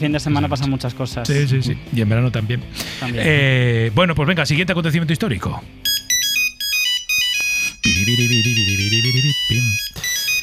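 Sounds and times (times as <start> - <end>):
speech: 0.0 - 5.8, 8.0 - 10.1
Nokia 3310 mobile phone ringtone beeping electronic melody: 5.8 - 10.4.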